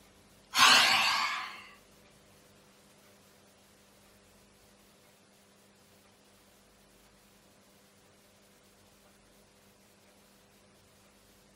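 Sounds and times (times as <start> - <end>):
deep inhale during a breathing exercise: 0.6 - 1.7.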